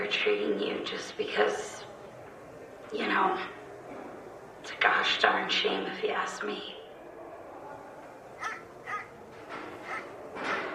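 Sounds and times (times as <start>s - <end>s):
speech: 0.1s - 1.9s, 2.9s - 3.6s, 4.6s - 6.8s
dog barking in short high yips: 8.4s - 9.1s, 9.9s - 10.1s.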